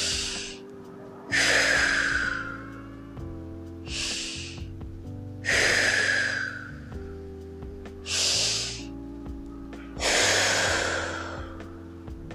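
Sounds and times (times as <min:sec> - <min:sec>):
deep breaths: 0:00.0 - 0:02.8, 0:03.9 - 0:04.8, 0:05.5 - 0:06.9, 0:08.1 - 0:08.9, 0:10.0 - 0:11.8
soft sustained tones: 0:00.0 - 0:12.1.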